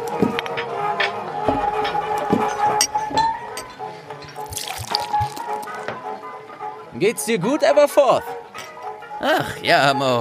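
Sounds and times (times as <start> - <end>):
glass clinking: 0.2 - 6.1
butterbeer pouring from a tap: 4.4 - 5.8
speech: 7.0 - 8.4, 9.2 - 10.1.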